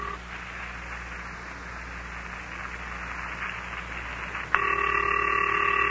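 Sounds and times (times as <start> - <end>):
steady electronic phone ringing tone: 0.0 - 0.2, 4.6 - 5.9
hissy humming phone line: 0.0 - 5.9.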